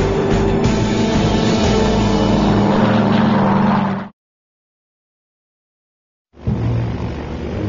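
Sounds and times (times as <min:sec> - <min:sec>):
propeller airliner engines roaring during takeoff roll on runway: 0:00.0 - 0:04.1, 0:06.4 - 0:07.6.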